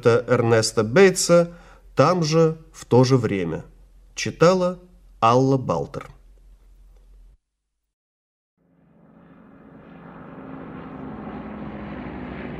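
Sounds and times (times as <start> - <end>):
speech: 0.0 - 6.2
American Airacobra propeller fighter plane engine roaring: 8.6 - 12.5.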